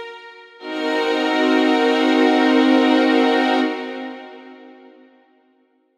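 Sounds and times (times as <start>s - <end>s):
m7b5 chord: 0.6s - 5.2s.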